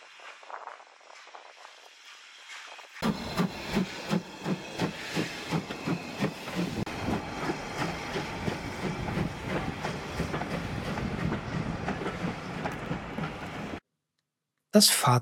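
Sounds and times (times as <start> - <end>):
steam locomotive hissing steam: 0.0 - 13.8
steam locomotive of the Strathspey Railway chugging away from Aviemore: 3.0 - 13.8
speech: 14.8 - 15.1.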